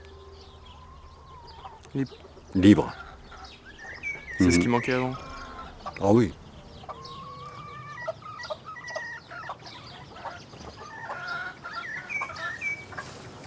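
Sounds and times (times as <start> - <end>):
busy outdoor flock murmuring: 0.0 - 8.2
hens clucking and squawking: 0.0 - 13.4
speech: 1.9 - 3.1, 4.4 - 5.3, 6.0 - 6.4.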